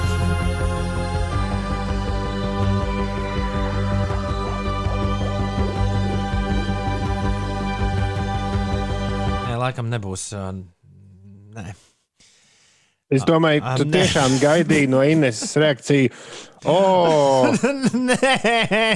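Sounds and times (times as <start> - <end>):
electronic synthesizer music with sustained tones and pulsing bass: 0.0 - 9.5
speech: 9.7 - 10.8, 11.6 - 11.9, 13.1 - 18.9
laughter: 13.2 - 16.0, 16.6 - 18.9.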